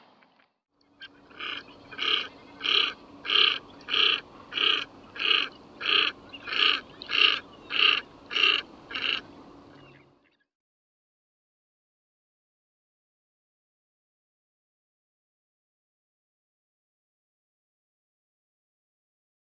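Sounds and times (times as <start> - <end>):
common pochard calling: 1.0 - 10.1.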